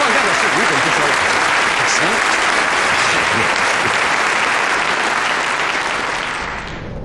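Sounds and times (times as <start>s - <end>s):
large audience applauding at a military entertainment troupe performance: 0.0s - 6.8s.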